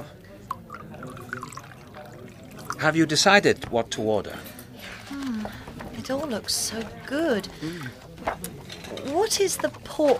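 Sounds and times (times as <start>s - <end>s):
low murmur of voices in a busy restaurant: 0.0s - 10.1s
water poured into a glass at a restaurant table: 0.4s - 3.6s
speech: 2.8s - 4.5s, 6.1s - 10.1s.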